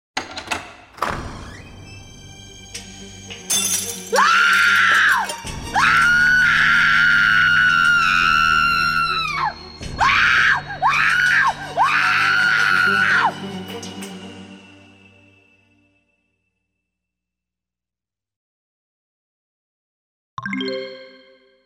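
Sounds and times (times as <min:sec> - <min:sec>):
maid screaming: 0:04.1 - 0:13.3.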